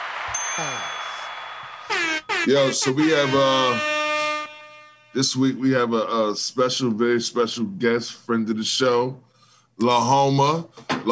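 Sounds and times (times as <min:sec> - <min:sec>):
bright notification bell ding: 0:00.4 - 0:02.2
speech: 0:00.6 - 0:00.9, 0:02.4 - 0:04.0, 0:05.2 - 0:11.1.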